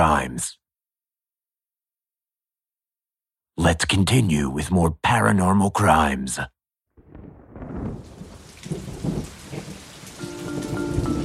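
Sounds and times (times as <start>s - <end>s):
speech: 0.1s - 0.6s, 3.6s - 6.6s
light rain pattering: 7.0s - 11.2s.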